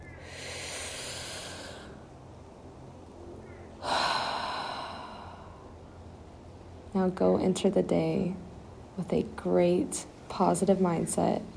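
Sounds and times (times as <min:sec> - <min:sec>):
deep breath: 0:00.2 - 0:02.0, 0:03.8 - 0:05.7
speech: 0:07.0 - 0:08.4, 0:09.0 - 0:11.5.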